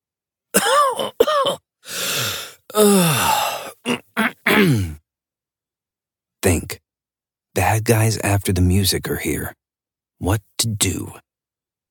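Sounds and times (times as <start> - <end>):
raspy throat clearing: 0.6 - 1.6, 2.7 - 5.0
person coughing: 0.6 - 5.0
long breathy exhale: 1.8 - 3.8
speech: 2.8 - 3.3, 7.8 - 9.6, 10.2 - 11.2.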